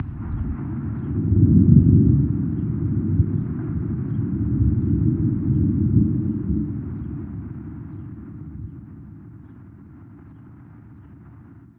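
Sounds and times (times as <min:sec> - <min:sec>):
thunder: 0:00.0 - 0:09.2.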